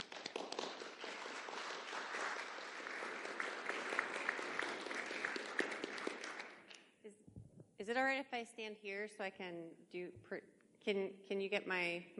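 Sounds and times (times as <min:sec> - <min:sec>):
audience applause welcoming a speaker: 0:00.0 - 0:06.7
speech: 0:07.9 - 0:12.1.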